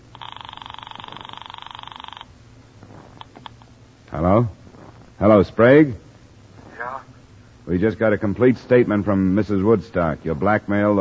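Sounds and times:
telephone ringing upstairs: 0.1 - 2.3
faint low rustling: 2.5 - 10.9
speech: 4.2 - 4.6, 5.2 - 6.0, 7.7 - 10.9.

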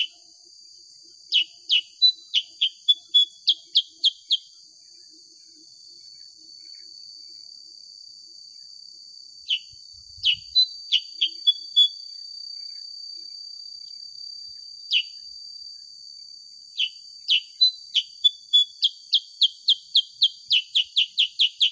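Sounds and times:
bulbul giving sharp downslurred chirps: 1.3 - 4.5, 9.5 - 12.0, 16.8 - 21.7.

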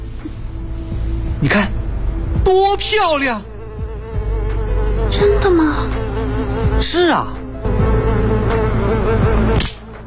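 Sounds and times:
speech: 1.4 - 1.8, 2.5 - 3.5, 5.1 - 7.4, 9.0 - 9.8
housefly buzzing: 3.4 - 10.0.

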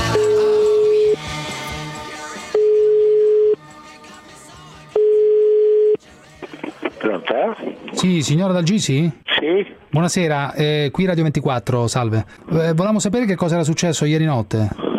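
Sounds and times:
telephone ringback tone while calling someone at home: 0.1 - 1.2, 2.5 - 3.6, 5.0 - 6.0
speech: 8.1 - 14.8.

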